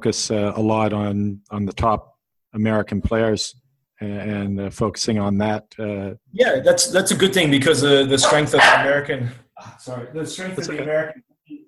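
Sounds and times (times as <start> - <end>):
speech: 0.0 - 11.3
pet dog barking and yelping: 8.2 - 9.0.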